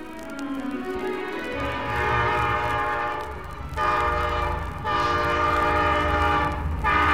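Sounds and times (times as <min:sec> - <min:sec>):
train rumbling past: 0:00.0 - 0:07.1
train horn blaring in long blasts: 0:01.6 - 0:07.1.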